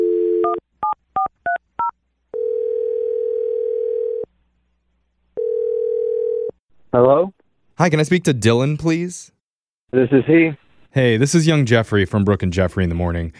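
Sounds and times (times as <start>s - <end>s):
phone dial tone: 0.0s - 0.6s, 2.4s - 4.3s, 5.4s - 6.6s
phone ringing tone: 0.0s - 1.0s, 1.8s - 4.3s, 5.4s - 6.6s
speech: 6.9s - 13.3s.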